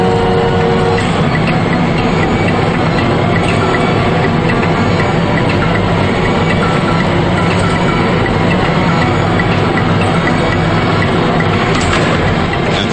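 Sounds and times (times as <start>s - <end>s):
industrial elevator doors closing: 0.0s - 12.9s.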